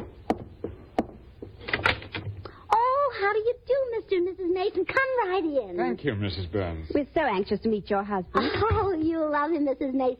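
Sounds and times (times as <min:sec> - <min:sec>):
front door creaking open: 0:01.6 - 0:02.4
speech: 0:03.2 - 0:10.1.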